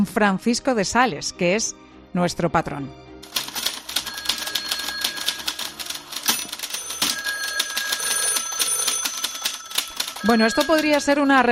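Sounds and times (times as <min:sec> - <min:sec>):
speech: 0:00.0 - 0:03.0, 0:10.2 - 0:11.5
typewriter keys clacking: 0:03.2 - 0:11.5.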